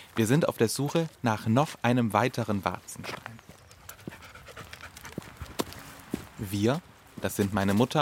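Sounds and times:
speech: 0.2 - 3.4, 6.4 - 8.0
black Australian Shepherd dog panting while walking: 3.5 - 6.0.

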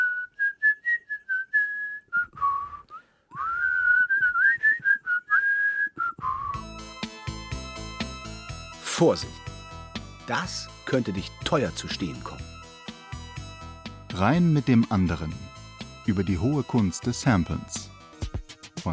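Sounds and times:
person whistling a wandering melody: 0.0 - 7.0, 16.0 - 18.0
bright burst of instrumental music: 6.5 - 18.9
speech: 9.0 - 9.4, 10.3 - 12.5, 14.2 - 17.9.

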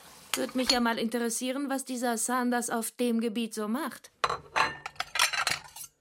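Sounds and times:
speech: 0.4 - 4.6
ceramic dishes clattering as they are set down on a rack: 4.2 - 5.8.

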